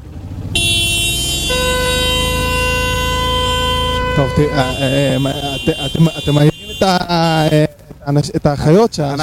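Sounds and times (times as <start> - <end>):
car horn blaring: 0.5 - 7.8
speech: 4.2 - 9.2.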